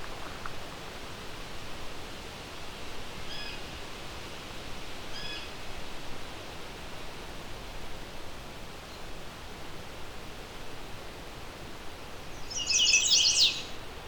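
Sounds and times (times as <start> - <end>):
steady hiss: 0.0 - 14.0
chestnut-sided warbler singing in leafed-out trees: 12.3 - 13.8
faint chips of chestnut-sided warbler: 12.5 - 13.7.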